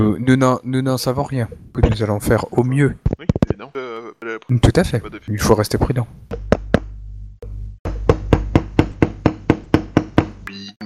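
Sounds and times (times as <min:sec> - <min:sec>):
speech: 0:00.0 - 0:03.2, 0:04.5 - 0:06.4
sharp knocks on a door: 0:06.3 - 0:06.9, 0:07.9 - 0:10.4.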